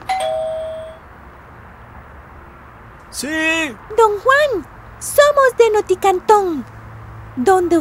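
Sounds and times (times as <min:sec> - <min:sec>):
house doorbell ding-dong chime: 0:00.0 - 0:01.0
speech: 0:03.1 - 0:06.8, 0:07.4 - 0:07.7.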